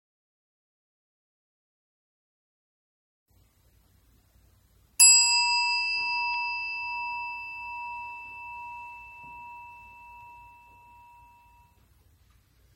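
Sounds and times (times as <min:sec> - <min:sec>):
meditation chime ringing: 0:05.0 - 0:11.8.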